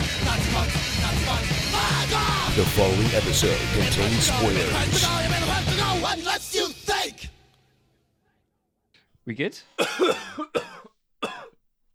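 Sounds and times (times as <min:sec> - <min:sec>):
speech: 0:00.6 - 0:06.7, 0:09.3 - 0:10.9
person coughing from apple pie stuck in the throat: 0:09.8 - 0:11.6.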